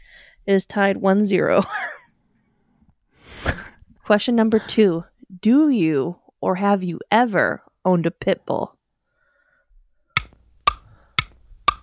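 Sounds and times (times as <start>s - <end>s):
speech: 0.5s - 1.9s, 4.1s - 8.8s
game timer clock ticking during a quiz round: 10.2s - 11.8s.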